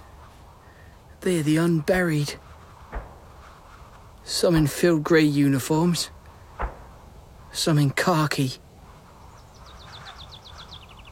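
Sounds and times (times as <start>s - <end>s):
speech: 1.2s - 2.5s, 4.3s - 6.2s, 7.6s - 8.6s
bird singing overhead with bright descending chirps: 8.9s - 11.0s.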